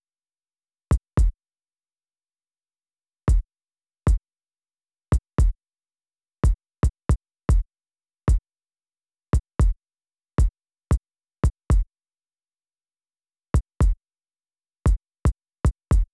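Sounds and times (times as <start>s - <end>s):
kick drum sample: 0.9s - 1.3s, 5.1s - 5.5s, 6.5s - 7.7s, 9.3s - 9.8s, 10.4s - 11.9s, 13.5s - 14.0s, 14.9s - 16.1s.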